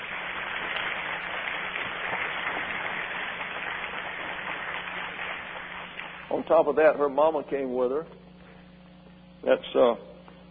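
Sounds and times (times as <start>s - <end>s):
crowd applauding: 0.0s - 6.3s
speech: 6.4s - 8.2s, 9.4s - 10.1s.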